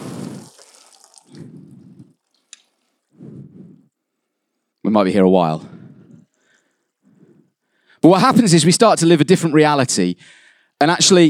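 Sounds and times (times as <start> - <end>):
water squirting into a container: 0.0 - 3.2
speech: 4.9 - 5.7, 8.0 - 11.2.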